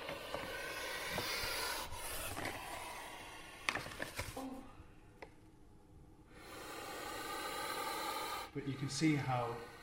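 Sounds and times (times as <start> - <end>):
puff adder hissing: 0.0 - 3.7, 6.3 - 9.8
speech: 8.6 - 9.7.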